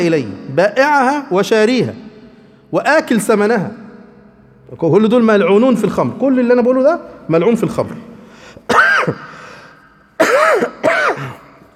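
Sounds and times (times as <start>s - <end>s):
speech: 0.0s - 2.0s, 2.7s - 3.8s, 4.7s - 9.3s
person coughing with rasping throat-clearing during a religious lecture: 8.6s - 11.7s.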